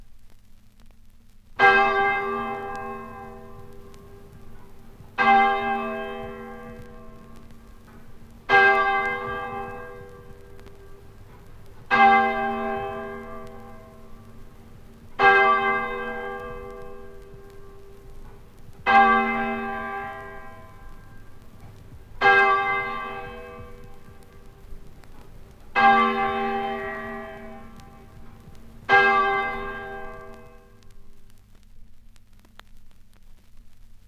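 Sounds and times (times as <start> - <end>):
church bell tolling: 1.6 - 14.5, 15.1 - 24.4, 25.8 - 30.8.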